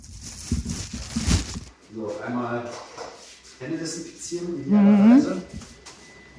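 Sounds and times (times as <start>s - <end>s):
thin plastic bags pulled over shoes: 0.0s - 1.8s
speech: 2.0s - 5.7s.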